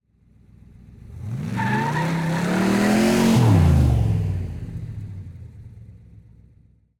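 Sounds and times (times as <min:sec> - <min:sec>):
1967 big-block Corvette driving: 0:00.5 - 0:06.6
1967 big-block Corvette burnout tyre squeal: 0:01.6 - 0:02.6.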